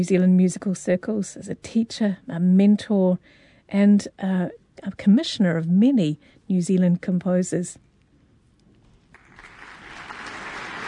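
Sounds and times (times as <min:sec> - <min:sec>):
speech: 0:00.0 - 0:07.8
large audience applauding in a concert hall: 0:09.2 - 0:10.8.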